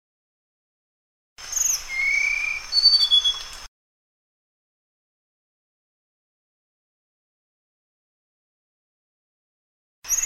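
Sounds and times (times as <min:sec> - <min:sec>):
flycatcher singing thin high slurred whistles: 0:01.5 - 0:03.6, 0:10.1 - 0:10.2.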